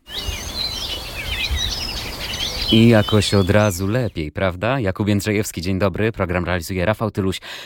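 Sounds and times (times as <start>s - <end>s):
birdsong with overlapping chirps and warbling trills: 0.0s - 4.3s
speech: 2.7s - 7.6s.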